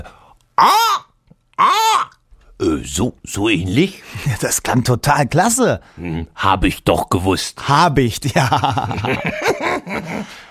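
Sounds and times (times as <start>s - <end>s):
speech: 0.0s - 1.0s, 2.8s - 10.4s
human voice imitating a hawk's call: 0.6s - 2.2s
laughter: 8.3s - 10.4s.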